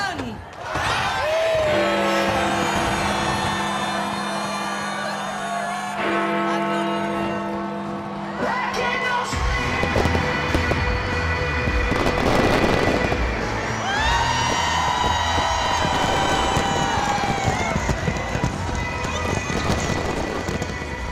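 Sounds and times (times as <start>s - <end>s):
faint crowd: 0.0s - 21.1s
New Year's Eve fireworks bursting in crackling bangs: 9.4s - 21.1s
New Year's Eve firework rockets whistling and whizzing into the night sky: 11.8s - 21.1s.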